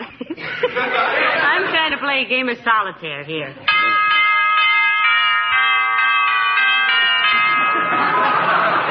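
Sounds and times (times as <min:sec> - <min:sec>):
laughter: 0:00.0 - 0:02.1, 0:07.2 - 0:08.8
speech: 0:00.7 - 0:01.2, 0:02.0 - 0:04.0
doorbell ringing: 0:03.7 - 0:08.8.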